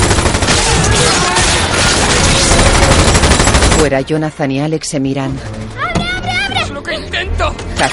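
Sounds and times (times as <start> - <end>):
heavy automatic gunfire from an upper floor during a fight among flames: 0.0 - 4.1
speech: 3.8 - 5.8, 7.4 - 7.9.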